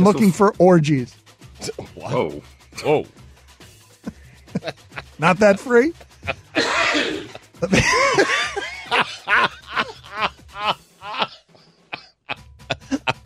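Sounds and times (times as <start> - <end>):
speech: 0.0 - 3.2, 4.5 - 10.8
people laughing: 4.1 - 11.4, 12.0 - 13.2
cough away from the microphone: 6.3 - 8.8, 11.1 - 13.1.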